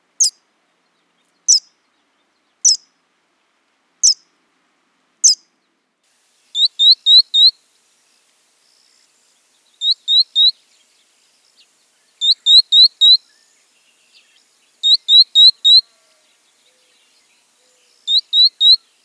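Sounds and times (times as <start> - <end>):
verdin calling: 2.6 - 2.9, 4.0 - 4.2, 6.6 - 7.6, 9.8 - 10.6, 11.6 - 19.0.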